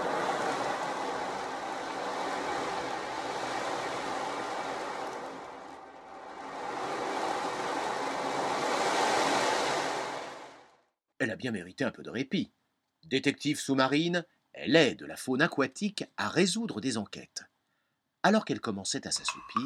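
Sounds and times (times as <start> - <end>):
ocean waves: 0.0 - 10.9
speech: 11.2 - 17.5, 18.2 - 19.6.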